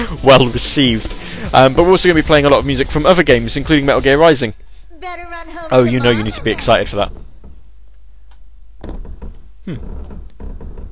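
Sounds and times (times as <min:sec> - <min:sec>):
speech: 0:00.1 - 0:07.2, 0:09.7 - 0:10.0
laughter: 0:05.5 - 0:07.2
soft knocking thuds: 0:06.4 - 0:10.9
wooden floorboards creaking and groaning: 0:06.5 - 0:10.9.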